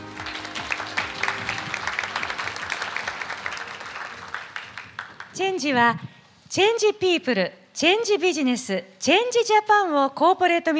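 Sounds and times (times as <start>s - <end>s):
audience applause welcoming a speaker: 0.0s - 5.4s
speech: 5.4s - 10.7s.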